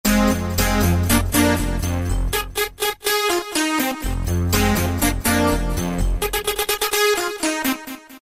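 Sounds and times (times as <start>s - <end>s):
chords: 0.1s - 8.2s.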